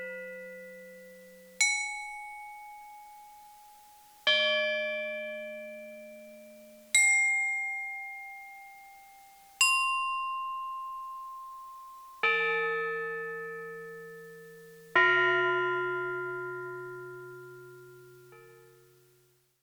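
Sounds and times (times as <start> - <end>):
bells ringing: 1.6 - 17.2.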